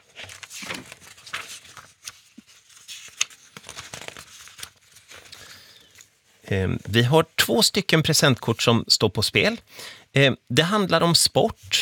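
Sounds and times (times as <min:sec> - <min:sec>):
pages flipping in a question binder: 0:00.0 - 0:06.2
speech: 0:06.5 - 0:11.7.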